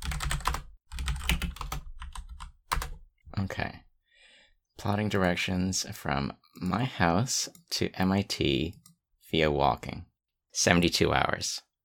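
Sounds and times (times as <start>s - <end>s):
typing on a clacky mechanical computer keyboard: 0.0s - 3.0s
speech: 3.4s - 3.8s, 4.8s - 11.7s.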